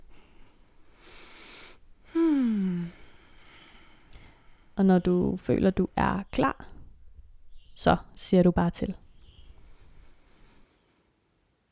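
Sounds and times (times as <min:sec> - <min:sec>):
deep breath in and out: 0:00.0 - 0:04.8
speech: 0:04.8 - 0:06.8, 0:07.8 - 0:09.0.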